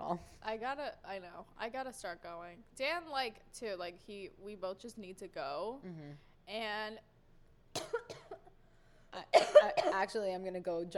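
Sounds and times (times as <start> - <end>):
speech: 0.1 - 7.1, 9.2 - 10.9
person with a lingering cough coughing: 7.8 - 8.5, 9.3 - 10.0.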